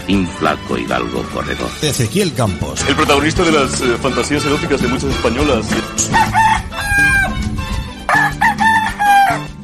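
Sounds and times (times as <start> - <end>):
speech: 0.1 - 7.2
rooster crowing: 6.1 - 7.4, 8.1 - 9.5.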